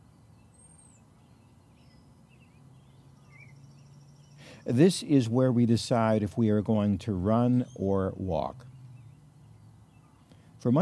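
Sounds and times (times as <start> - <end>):
faint birds chirping and whistling: 0.0 - 10.8
steady low outdoor rumble: 1.2 - 10.8
speech: 4.6 - 8.7, 10.6 - 10.8.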